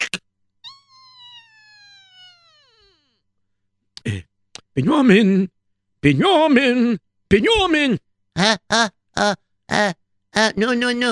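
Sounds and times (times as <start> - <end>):
door creaking open at the top of the steps: 0.7 - 3.2
speech: 4.8 - 11.1.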